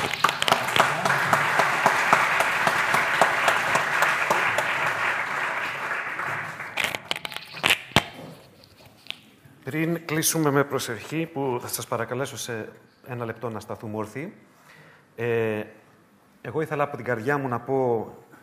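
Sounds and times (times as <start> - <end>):
crowd applauding: 0.0 - 7.1
speech: 9.7 - 14.5, 15.2 - 15.8, 16.4 - 18.2.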